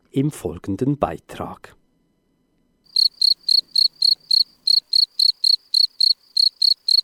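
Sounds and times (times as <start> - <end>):
speech: 0.2 - 1.8
field cricket chirping: 2.9 - 7.0.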